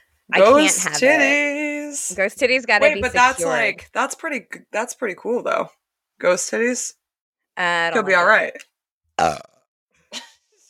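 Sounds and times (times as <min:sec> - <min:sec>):
speech: 0:00.3 - 0:07.0, 0:07.6 - 0:09.5
person belching: 0:09.2 - 0:09.7.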